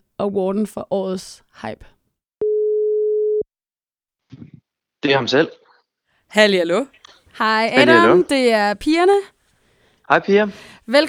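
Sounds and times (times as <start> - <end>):
speech: 0.2 - 2.0, 4.3 - 5.6, 6.3 - 9.4, 10.1 - 11.0
telephone ringback tone of an outgoing call: 2.4 - 3.4.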